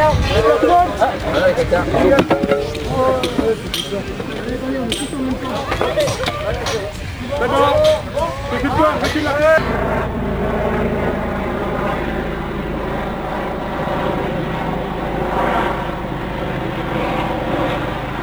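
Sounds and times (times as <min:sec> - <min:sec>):
laughter: 0:00.0 - 0:10.1
helicopter engine and rotor droning overhead: 0:00.0 - 0:18.2
speech: 0:00.3 - 0:11.2.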